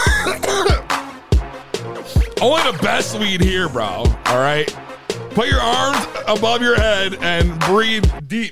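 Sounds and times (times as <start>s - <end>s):
person coughing harshly with a wheezy tail: 0.0s - 1.0s
speech: 2.4s - 4.8s, 5.4s - 8.5s.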